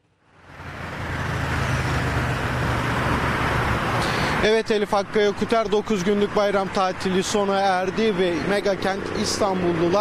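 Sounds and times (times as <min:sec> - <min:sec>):
dense road traffic roar with low engine rumble: 0:00.0 - 0:09.9
speech: 0:04.4 - 0:09.9.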